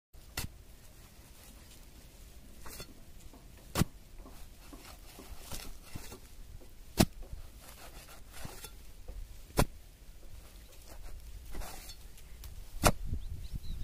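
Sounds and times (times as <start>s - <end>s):
plowing soil: 0.2s - 13.7s.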